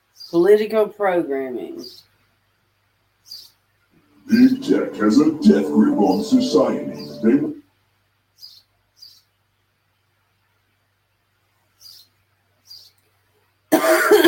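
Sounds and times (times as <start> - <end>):
speech: 0.3 - 2.1, 4.3 - 7.6
man coughing and clearing his throat: 13.7 - 14.2.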